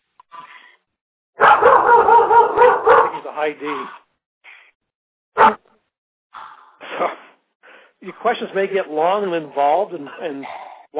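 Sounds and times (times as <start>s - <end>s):
dog barking: 1.4s - 3.2s, 5.4s - 5.6s
speech: 3.4s - 4.0s, 8.0s - 10.9s.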